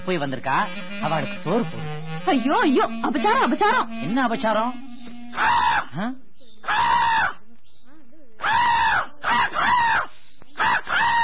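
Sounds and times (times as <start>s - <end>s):
speech: 0.0s - 7.1s
person calling out to crows imitating caws: 5.3s - 7.4s, 8.4s - 11.2s.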